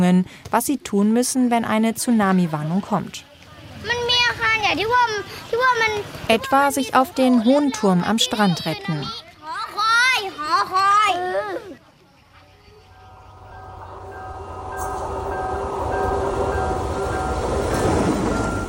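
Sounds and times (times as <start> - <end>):
speech: 0.0 - 9.2
children's voices chattering: 3.4 - 14.1
passenger train rumbling past on a single track in Sri Lanka: 12.7 - 18.6.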